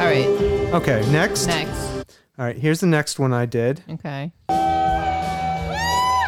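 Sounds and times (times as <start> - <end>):
speech: 0.1 - 4.4
concert crowd screaming: 4.6 - 6.2.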